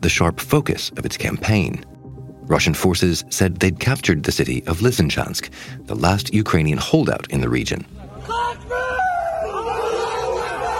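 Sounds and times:
speech: 0:00.0 - 0:01.9, 0:02.5 - 0:08.0
group of fighters shouting in celebration: 0:08.2 - 0:10.7.

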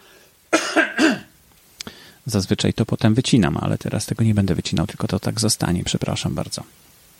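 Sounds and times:
person clearing throat: 0:00.5 - 0:01.3
speech: 0:02.3 - 0:06.9.

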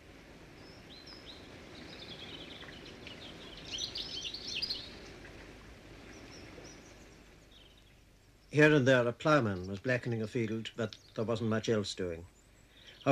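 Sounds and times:
low steady outdoor rumble: 0:00.0 - 0:13.0
thin faint birdsong with high chirps and short trills: 0:00.0 - 0:13.0
speech: 0:08.6 - 0:12.3.

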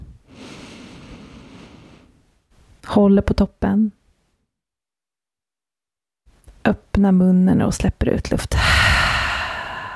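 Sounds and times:
long deep breath drawn in through the nose: 0:00.2 - 0:02.2, 0:08.6 - 0:09.9
speech: 0:02.9 - 0:04.0, 0:06.6 - 0:08.8.

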